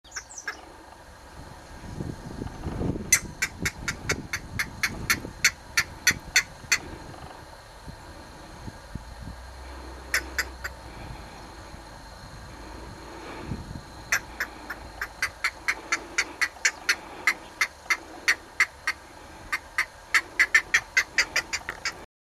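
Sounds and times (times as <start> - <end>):
green heron: 0.1 - 1.0, 3.1 - 7.5, 9.6 - 11.8, 12.5 - 22.1.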